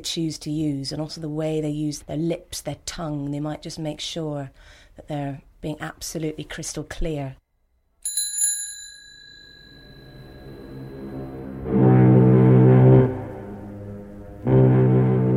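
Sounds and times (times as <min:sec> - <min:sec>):
speech: 0:00.0 - 0:07.4
bicycle bell ringing: 0:08.0 - 0:11.0
low droning horn-like blasts: 0:10.5 - 0:15.3.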